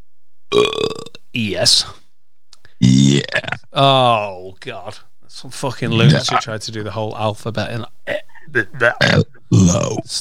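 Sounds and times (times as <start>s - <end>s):
man belching on command: 0.5s - 1.2s, 2.8s - 3.8s, 5.9s - 6.4s, 8.6s - 10.1s
speech: 1.4s - 2.0s, 2.9s - 10.1s.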